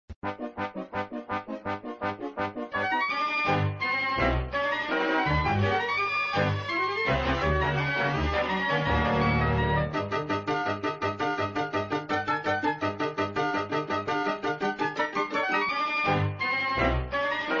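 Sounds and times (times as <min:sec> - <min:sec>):
looping melody: 0:00.2 - 0:17.5.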